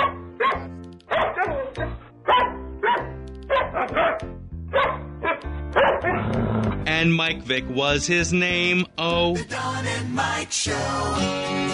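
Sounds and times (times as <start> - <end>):
dog barks in a tune-like rhythm: 0.0 - 6.2
speech: 6.3 - 11.7.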